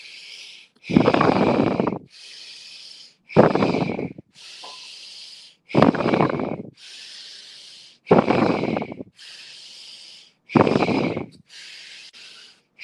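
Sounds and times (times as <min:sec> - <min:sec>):
nasal breathing through a single nostril: 0:00.0 - 0:12.8.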